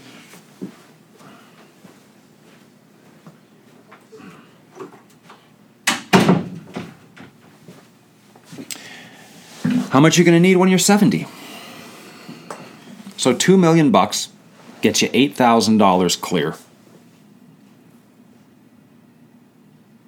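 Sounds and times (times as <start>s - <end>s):
shuffling sounds: 0.0s - 4.5s, 7.4s - 8.7s, 14.4s - 15.1s, 16.4s - 18.6s
door pushed shut with a solid thump and rattle: 5.9s - 7.3s
speech: 10.0s - 11.4s, 13.2s - 16.6s.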